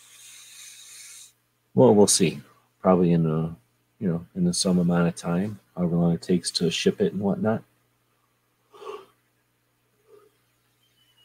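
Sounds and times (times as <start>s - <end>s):
soft exhale: 0.0s - 1.4s, 8.7s - 9.1s
speech: 1.8s - 7.7s
person yawning: 8.8s - 9.1s.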